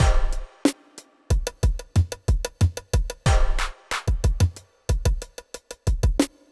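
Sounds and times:
deep beat: 0:00.0 - 0:00.6, 0:01.3 - 0:05.3.

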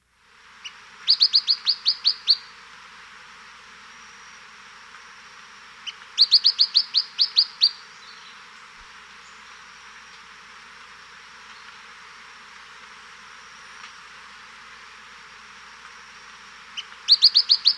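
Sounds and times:
Tufted Flycatcher calling in South America: 0:00.4 - 0:03.0, 0:03.8 - 0:17.7.

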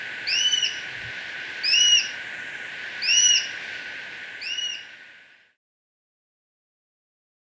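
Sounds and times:
Plain-breasted Hawk shrill whistling calls in Ecuador: 0:00.0 - 0:05.0
constant hiss: 0:00.0 - 0:05.6.

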